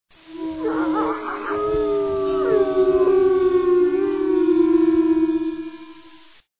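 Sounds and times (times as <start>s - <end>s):
wolves: 0.4s - 5.0s.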